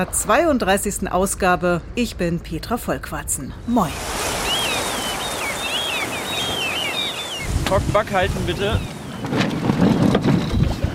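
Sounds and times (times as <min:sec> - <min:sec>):
speech: 0:00.0 - 0:04.2, 0:07.7 - 0:09.9
roar of strong gusty wind and water around the hull of a sailing cutter: 0:03.6 - 0:10.9
sail flapping on a youth touring sailing cutter: 0:04.0 - 0:10.9.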